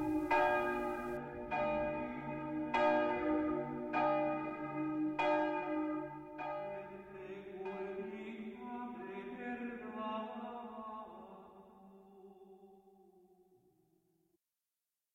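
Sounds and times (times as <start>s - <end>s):
church bells ringing a peal: 0.0s - 9.1s.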